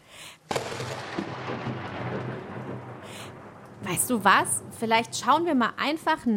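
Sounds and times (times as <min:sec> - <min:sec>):
thunder cracking and rolling: 0:00.5 - 0:06.3
rain-like hiss of the storm: 0:02.7 - 0:04.9
speech: 0:03.9 - 0:06.3.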